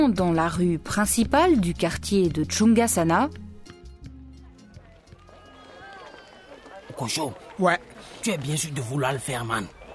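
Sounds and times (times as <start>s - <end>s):
speech: 0.0s - 3.4s, 7.0s - 9.8s
footsteps of someone running fast: 4.6s - 9.9s.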